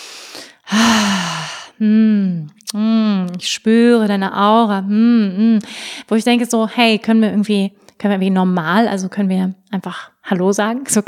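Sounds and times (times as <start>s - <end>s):
deep breath drawn in: 0.0s - 1.8s
long loud voiced sigh: 0.7s - 1.8s
speech: 3.4s - 11.0s.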